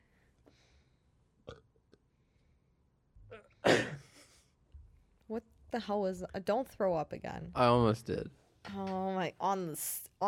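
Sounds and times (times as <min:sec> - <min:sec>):
person burping: 0:01.4 - 0:01.8, 0:03.3 - 0:04.1
speech: 0:05.3 - 0:10.2.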